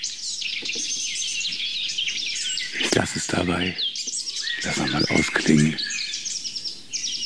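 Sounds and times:
blue tit calling: 0:00.0 - 0:07.2
blackcap subsong warble: 0:02.4 - 0:06.0
speech: 0:02.9 - 0:03.9, 0:04.6 - 0:06.0.

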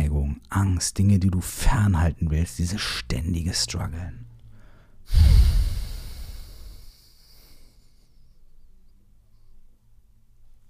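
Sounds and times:
speech: 0:00.6 - 0:04.2, 0:05.1 - 0:05.6
deep exhale during a breathing exercise: 0:04.5 - 0:08.0.

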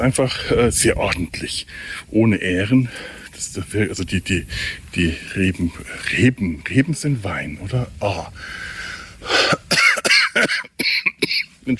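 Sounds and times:
speech: 0:00.0 - 0:09.6
person with a cold coughing: 0:09.3 - 0:11.5.

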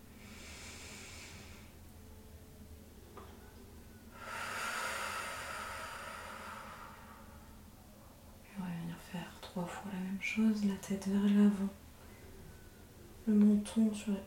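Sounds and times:
slow breathing in and out during a guided breathing exercise: 0:00.0 - 0:01.9, 0:04.1 - 0:07.6
speech: 0:09.6 - 0:11.8, 0:13.3 - 0:14.2.

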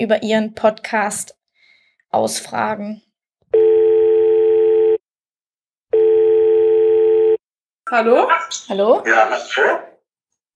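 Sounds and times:
speech: 0:00.0 - 0:01.4, 0:02.1 - 0:03.6, 0:07.9 - 0:09.9
ringing tone of an outgoing internet call: 0:03.6 - 0:05.0, 0:05.9 - 0:07.4.

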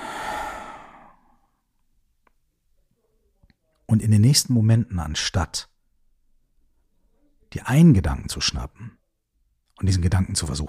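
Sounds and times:
deep exhale through the mouth in a relaxation breathing exercise: 0:00.0 - 0:01.4
speech: 0:03.9 - 0:05.7, 0:07.5 - 0:09.0, 0:09.8 - 0:10.6.

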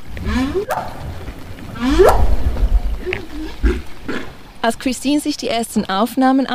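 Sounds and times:
low rumble of the sea: 0:00.0 - 0:05.9
speech: 0:00.2 - 0:01.1, 0:04.6 - 0:06.5
underwater whale upsweep call: 0:00.2 - 0:03.8
underwater whale grunting whups: 0:00.2 - 0:04.5.

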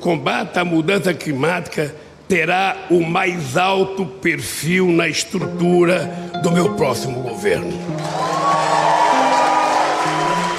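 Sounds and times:
speech: 0:00.0 - 0:08.4
large conference audience applauding: 0:07.8 - 0:10.5.

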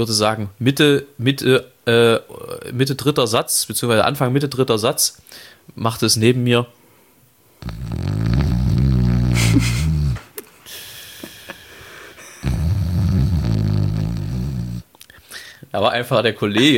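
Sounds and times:
speech: 0:00.0 - 0:06.8, 0:07.6 - 0:08.2, 0:09.5 - 0:09.8, 0:15.7 - 0:16.7
voice imitating loud snoring: 0:07.6 - 0:10.2, 0:12.4 - 0:14.9.

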